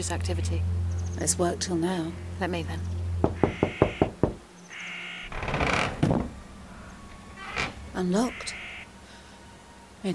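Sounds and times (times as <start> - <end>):
speech: 0.0 - 3.4, 8.0 - 8.6
knocking on the door of a house: 3.2 - 4.4
door creaking: 3.2 - 7.9.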